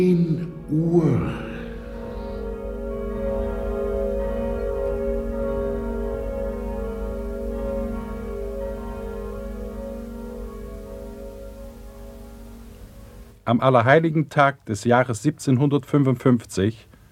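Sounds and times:
speech: 0.0s - 1.5s, 13.5s - 16.9s
church bells ringing in the morning: 0.0s - 13.4s.

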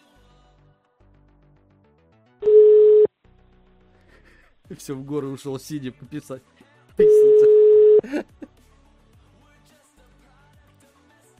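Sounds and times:
telephone tone while a call is placed: 2.4s - 3.1s, 7.0s - 8.0s
speech: 4.7s - 7.3s.

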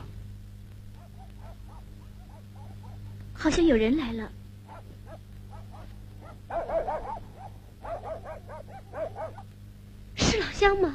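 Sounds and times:
steady low hum: 0.0s - 10.9s
dog barking: 0.9s - 3.2s, 4.7s - 9.5s
speech: 3.4s - 4.4s, 10.6s - 10.9s.

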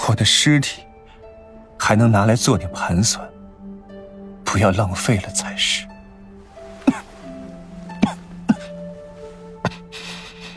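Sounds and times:
speech: 0.1s - 0.9s, 1.8s - 3.3s, 4.5s - 5.9s
muffled suppressed coughs from a man: 6.8s - 7.2s, 8.0s - 8.8s.

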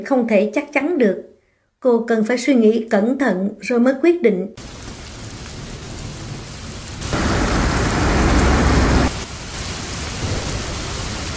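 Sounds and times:
speech: 0.0s - 4.8s
heavy thunderstorm rain lashing a window: 4.6s - 11.3s
low thunder rumble: 4.6s - 11.3s.

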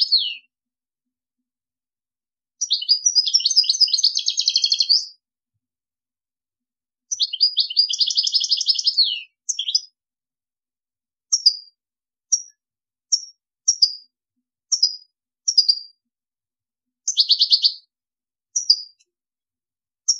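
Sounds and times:
European goldfinch singing: 0.0s - 0.5s, 2.6s - 5.2s, 7.1s - 10.0s, 11.3s - 14.1s, 14.7s - 16.0s, 17.0s - 17.9s, 18.5s - 19.0s.

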